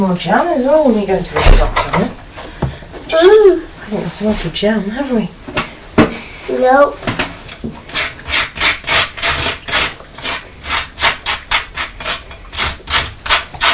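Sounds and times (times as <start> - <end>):
speech: 0.0 - 2.2, 3.1 - 5.4, 6.6 - 7.8
knife spreading butter across toast: 7.9 - 13.7.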